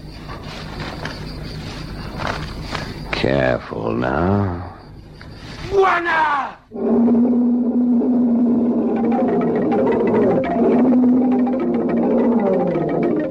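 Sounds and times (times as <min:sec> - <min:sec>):
speech: 0:03.3 - 0:04.7, 0:05.7 - 0:07.4
charging lion's coughing grunt and roar rushing through grass: 0:06.7 - 0:13.2.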